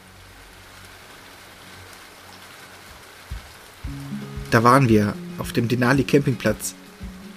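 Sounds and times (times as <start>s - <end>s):
torrential rain pouring down: 0.0s - 7.3s
dull low thuds: 3.3s - 4.6s, 7.0s - 7.3s
speech: 3.9s - 6.8s.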